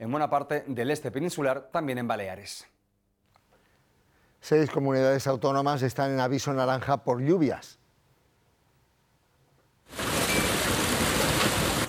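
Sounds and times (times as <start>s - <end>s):
speech: 0.0s - 2.8s, 4.4s - 7.8s
hail pouring down heavily: 10.0s - 11.8s.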